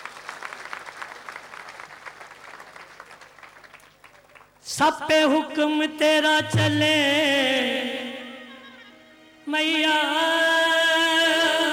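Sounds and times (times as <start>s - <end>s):
audience applause: 0.0s - 4.6s
speech: 4.7s - 8.0s, 9.5s - 10.6s.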